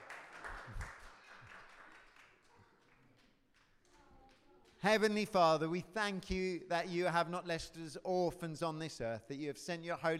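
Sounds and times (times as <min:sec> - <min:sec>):
crowd clapping: 0:00.0 - 0:05.0
speech: 0:04.8 - 0:10.1.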